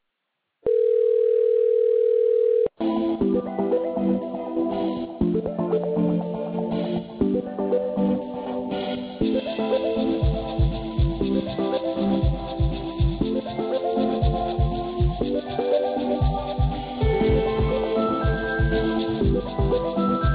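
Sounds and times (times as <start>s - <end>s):
telephone ringing tone while a call is being connected: 0.7s - 2.7s
music-like tones on a customer service line: 2.8s - 20.3s.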